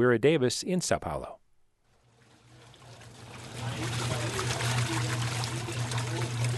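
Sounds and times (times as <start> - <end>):
speech: 0.0 - 1.4
low steady hum: 1.9 - 6.5
water pouring from an emergency well in Itu southeastern Brazil: 2.0 - 6.5.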